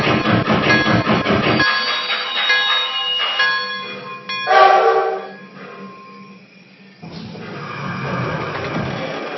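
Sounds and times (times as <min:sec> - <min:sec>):
train rolling along the rails: 0:00.0 - 0:09.3
ringing metallic tones: 0:00.6 - 0:07.0.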